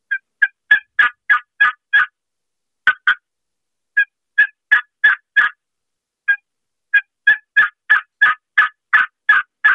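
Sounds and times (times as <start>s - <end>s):
turkey call worked in raspy yelps and clucks: 0.1s - 2.2s, 2.9s - 3.2s, 4.0s - 5.6s, 6.3s - 9.7s.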